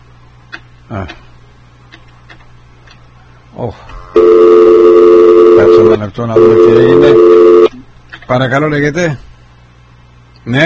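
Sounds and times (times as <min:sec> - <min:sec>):
speech: 0:00.9 - 0:01.3, 0:03.6 - 0:04.5, 0:05.8 - 0:07.4, 0:08.3 - 0:09.3, 0:10.4 - 0:10.6
loud steady telephone dial tone after call line dropped: 0:04.2 - 0:07.7.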